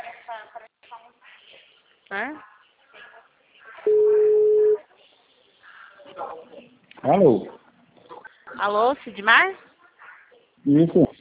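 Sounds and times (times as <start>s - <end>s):
people talking quietly: 0.0s - 11.1s
speech: 2.1s - 2.5s, 7.0s - 7.6s, 8.6s - 9.7s, 10.6s - 11.1s
telephone ringback tone while calling back after a dropped call: 3.9s - 4.8s.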